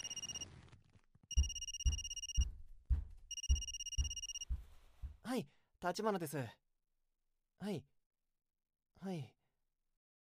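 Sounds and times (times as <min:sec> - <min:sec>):
man's mobile phone ringing with a bright electronic tone: 0:00.0 - 0:00.4, 0:01.3 - 0:02.4, 0:03.3 - 0:04.5
soft low thumps: 0:01.3 - 0:05.3
speech: 0:05.3 - 0:06.6, 0:07.6 - 0:07.9, 0:09.0 - 0:09.4.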